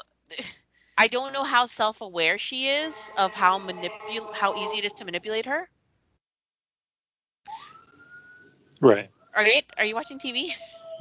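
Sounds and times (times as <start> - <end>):
speech: 0.3 - 5.8, 8.8 - 11.0
fire truck sirens passing outside: 2.8 - 5.3.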